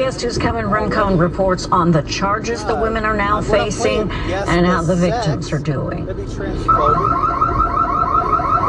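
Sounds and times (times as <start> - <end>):
voices of women trashing a shop: 0.0 - 7.2
speech: 0.0 - 7.4
electronic alarm in a French fry shop warbling: 6.7 - 8.6.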